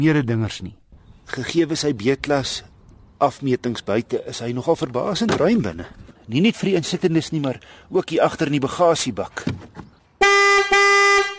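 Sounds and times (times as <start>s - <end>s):
speech: 0.0s - 9.9s
Corsa car horn honking: 10.2s - 11.3s.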